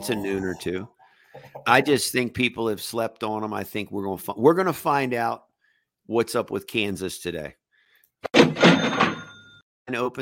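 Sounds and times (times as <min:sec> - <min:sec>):
speech: 0:00.0 - 0:05.5, 0:06.1 - 0:07.6, 0:09.9 - 0:10.2
cash register drawer clattering: 0:08.4 - 0:09.4
bright cash register bell ring: 0:08.5 - 0:09.6.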